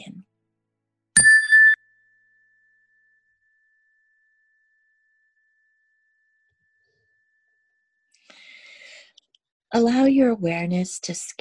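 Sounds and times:
meditation chime ringing: 0:01.2 - 0:07.8
speech: 0:09.7 - 0:11.3.

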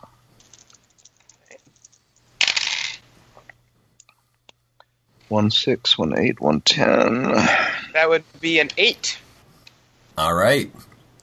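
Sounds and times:
dice rattling and clattering across a hard tabletop: 0:00.4 - 0:03.1
speech: 0:05.3 - 0:09.2, 0:10.2 - 0:10.9.

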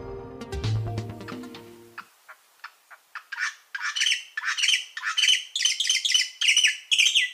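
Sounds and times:
mountain grackle giving harsh squawking calls: 0:02.3 - 0:07.3.

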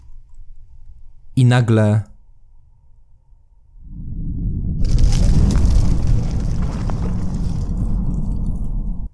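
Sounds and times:
speech: 0:01.5 - 0:02.1
huge fiery explosion: 0:03.9 - 0:09.1
boulders collapsing in a cave: 0:04.7 - 0:09.1
stones grinding against each other: 0:04.9 - 0:08.9.

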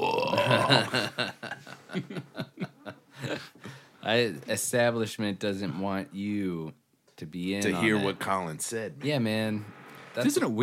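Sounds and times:
long deep voiced burp: 0:00.0 - 0:01.1
short rhythmic chuckling bursts: 0:00.0 - 0:03.6
speech: 0:00.5 - 0:02.4, 0:04.1 - 0:10.6.

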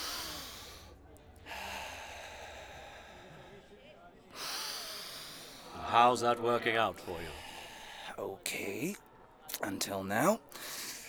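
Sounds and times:
deep breathing exercise: 0:00.0 - 0:06.2, 0:06.8 - 0:08.4, 0:10.4 - 0:11.0
speech: 0:05.9 - 0:07.4, 0:08.2 - 0:10.7.

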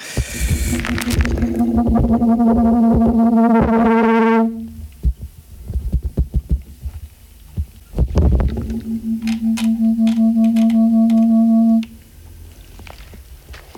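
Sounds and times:
tape hiss on a home demo recording: 0:00.0 - 0:05.2, 0:08.3 - 0:12.1
loud steady buzzy electrical hum on a home demo recording: 0:00.0 - 0:05.7, 0:06.8 - 0:12.1
scattered low thumps: 0:00.2 - 0:05.3, 0:08.0 - 0:12.0.

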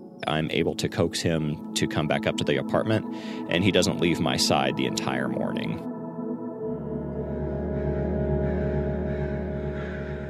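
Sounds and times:
speech: 0:00.2 - 0:06.0
crows cawing in a songbird tree: 0:07.4 - 0:10.2.

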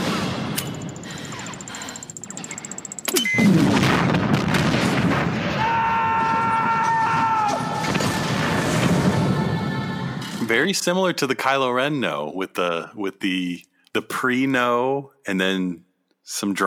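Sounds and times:
busy action noise in a film scene: 0:00.1 - 0:03.8
bridge exploding in a film scene: 0:03.4 - 0:09.4
speech: 0:10.5 - 0:16.6.

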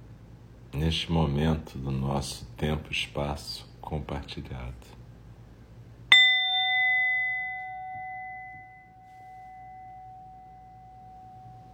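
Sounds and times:
low room hum: 0:00.0 - 0:11.7
speech: 0:00.8 - 0:05.0
meditation bell struck and ringing: 0:06.1 - 0:11.7.

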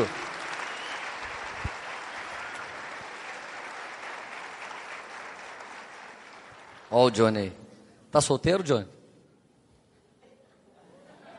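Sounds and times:
audience applause: 0:00.0 - 0:07.2
speech: 0:06.9 - 0:09.0
laughter: 0:10.2 - 0:11.3.

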